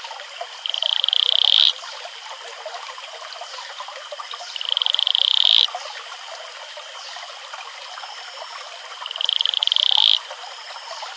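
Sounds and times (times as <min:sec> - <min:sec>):
male Atelopus franciscus pulsed trill advertisement call: 0:00.6 - 0:01.8, 0:04.4 - 0:05.7, 0:08.0 - 0:11.1.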